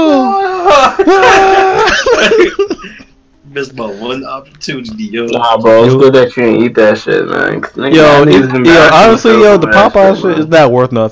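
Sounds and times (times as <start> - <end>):
man screaming an exaggerated anime power-up yell: 0.0 - 2.2
laughter: 0.0 - 3.2
speech: 0.9 - 1.7, 2.5 - 11.1.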